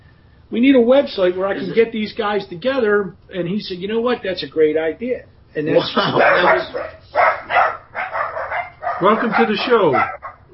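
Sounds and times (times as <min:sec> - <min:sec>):
speech: 0:00.5 - 0:07.1, 0:09.0 - 0:10.3
puppies barking: 0:06.0 - 0:10.5.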